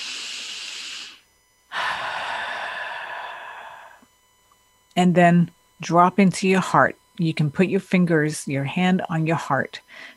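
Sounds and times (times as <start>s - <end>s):
deep breath: 0.0s - 4.1s, 9.9s - 10.1s
speech: 5.0s - 10.1s.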